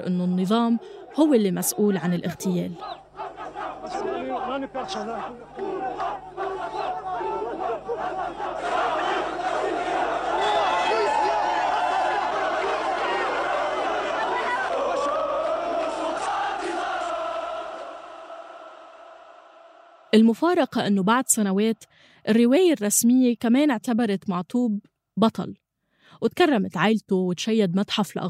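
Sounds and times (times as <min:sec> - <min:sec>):
speech: 0:00.0 - 0:03.0, 0:03.9 - 0:06.2, 0:20.2 - 0:28.2
large crowd of Amazigh demonstrators shouting and chanting at a street demonstration: 0:00.0 - 0:21.8.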